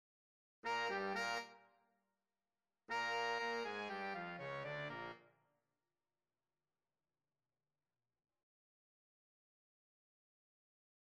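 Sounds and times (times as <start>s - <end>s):
horn: 0.7s - 1.6s, 2.9s - 5.2s.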